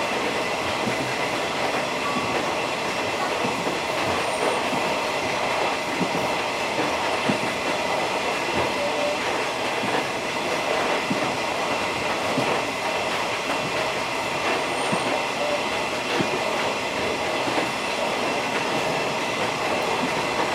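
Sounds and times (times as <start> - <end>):
faint rhythmic clicks from the rails: 0.0 - 20.5
old-style passenger train wheels and carriage rumbling on a coastal mountain line: 0.0 - 20.5.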